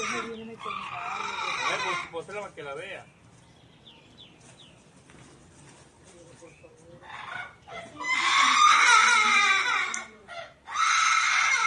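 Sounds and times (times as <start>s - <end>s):
parrot screeching in distress: 0.0s - 2.2s, 7.0s - 11.6s
speech: 1.9s - 3.2s.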